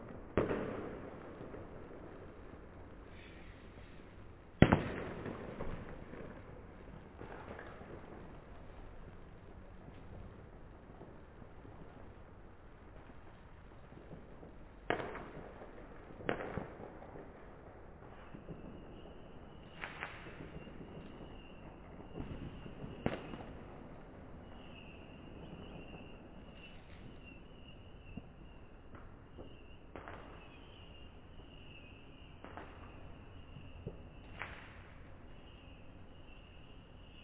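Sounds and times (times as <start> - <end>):
fireworks banging and crackling across a valley: 0.0 - 37.2
steady high firework whistle or hiss: 18.2 - 23.5, 24.4 - 37.2.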